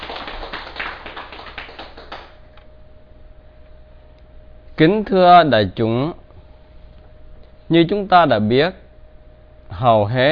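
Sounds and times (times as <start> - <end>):
audience applauding at a dharma talk: 0.0 - 2.4
speech: 4.8 - 6.2, 7.7 - 8.8, 9.7 - 10.3.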